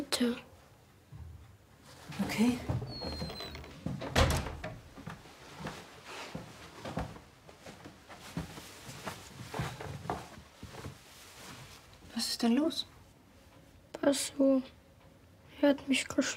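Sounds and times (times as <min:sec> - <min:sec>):
speech: 0:00.2 - 0:00.5, 0:02.2 - 0:02.9, 0:12.4 - 0:12.9, 0:14.0 - 0:14.8, 0:15.6 - 0:16.3
shuffling movement: 0:01.8 - 0:13.0
door swinging shut with a solid thud: 0:02.6 - 0:04.9.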